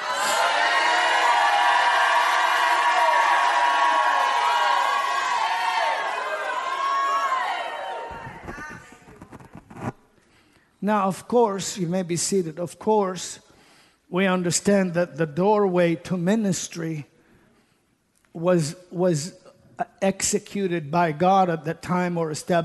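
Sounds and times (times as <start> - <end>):
large audience shouting and cheering: 0.0 - 8.8
speech: 10.8 - 13.5, 14.1 - 17.1, 18.4 - 22.6.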